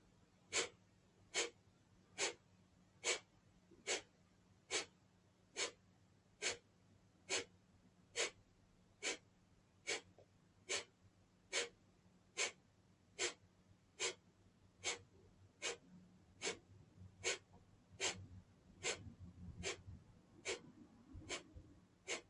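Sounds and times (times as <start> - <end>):
faint low hum: 0.0 - 22.2
short mid-range breaths during a guided breathing exercise: 0.5 - 1.6, 2.2 - 2.4, 3.0 - 4.1, 4.7 - 4.9, 5.6 - 5.8, 6.4 - 6.6, 7.3 - 7.5, 8.2 - 8.4, 9.0 - 9.2, 9.8 - 10.1, 10.7 - 10.9, 11.5 - 11.8, 12.4 - 12.6, 13.2 - 13.4, 14.0 - 14.2, 14.8 - 15.0, 15.6 - 15.8, 16.4 - 16.6, 17.2 - 17.4, 18.0 - 18.2, 18.8 - 19.8, 20.4 - 20.6, 21.3 - 22.2.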